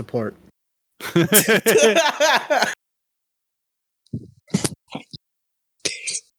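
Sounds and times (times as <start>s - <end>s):
speech: 0.0s - 0.5s, 1.2s - 2.8s
person coughing harshly: 1.0s - 2.1s
person laughing loudly and breathily: 1.0s - 2.8s.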